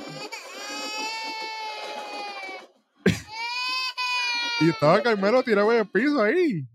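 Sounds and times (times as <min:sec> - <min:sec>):
man crying in pain with a long high strained wail: 0:03.1 - 0:03.5
speech: 0:04.6 - 0:06.7.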